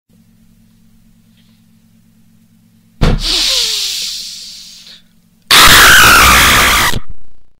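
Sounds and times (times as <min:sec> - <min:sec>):
person screaming after stubbing toe: 0:05.5 - 0:07.0.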